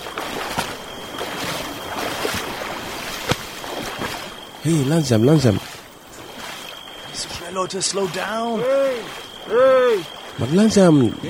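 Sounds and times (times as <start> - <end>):
water rushing past an overcrowded boat under way: 0.0 - 11.2
sharp knocks against the boat hull: 3.2 - 4.1
speech: 4.6 - 5.8, 7.6 - 11.2.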